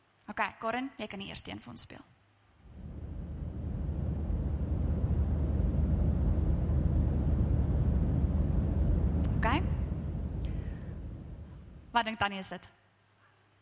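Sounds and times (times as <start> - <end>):
speech: 0.3 - 2.2, 12.0 - 12.8
airplane droning roar: 2.6 - 12.0.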